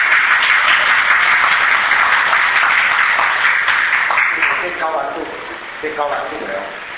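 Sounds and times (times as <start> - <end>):
crowd applauding a soldier: 0.0 - 4.9
speech: 4.9 - 6.9.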